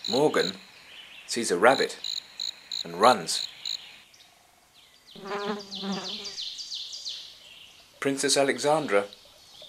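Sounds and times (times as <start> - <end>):
insects buzzing loudly: 0.0 - 4.1, 5.1 - 6.7
speech: 0.1 - 0.7, 1.3 - 2.1, 2.8 - 3.5, 5.2 - 6.3, 8.0 - 9.6
rapid high-pitched chirps: 1.7 - 3.8.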